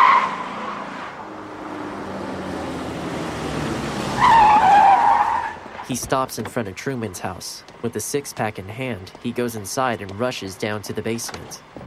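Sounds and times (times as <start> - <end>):
truck tire squeals in turns: 0.0 - 1.3, 3.6 - 6.0
truck speeding along a road, engine roaring: 0.0 - 11.8
speech: 5.9 - 11.8.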